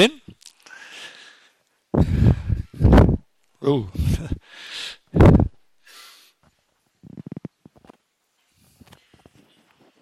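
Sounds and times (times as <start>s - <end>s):
speech: 0.0s - 0.2s, 3.6s - 4.4s, 5.1s - 5.5s
heavy breathing into the microphone: 0.6s - 3.2s, 4.0s - 6.4s.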